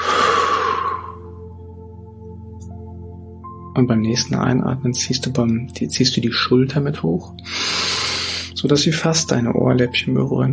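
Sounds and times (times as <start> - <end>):
long breathy exhalation during a guided relaxation exercise: 0.0 - 1.4, 7.4 - 8.6
speech: 3.8 - 7.7, 8.6 - 10.5.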